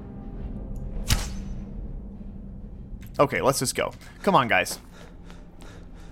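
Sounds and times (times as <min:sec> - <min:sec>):
low steady rumble: 0:00.0 - 0:06.1
video game arrow shot at a spider: 0:01.0 - 0:01.6
speech: 0:03.2 - 0:05.1.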